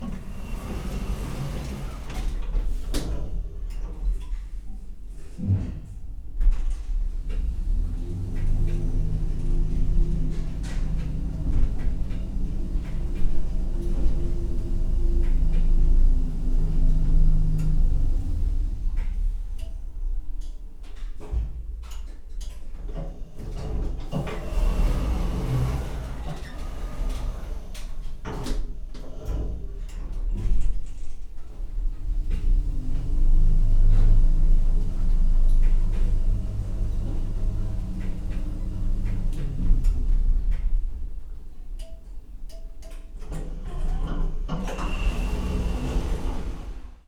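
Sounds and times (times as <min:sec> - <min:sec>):
modern elevator sliding door with light airy movement: 0:00.0 - 0:04.1, 0:06.6 - 0:20.3, 0:23.2 - 0:47.0.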